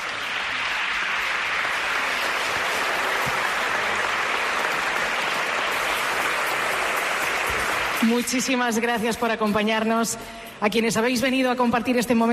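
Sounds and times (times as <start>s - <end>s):
live audience applause: 0.0s - 8.4s
speech: 8.0s - 12.3s.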